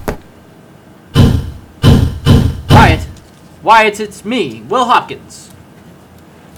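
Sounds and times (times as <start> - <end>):
heavy booming knocks on a wooden door: 1.2 - 3.1
speech: 3.6 - 5.5.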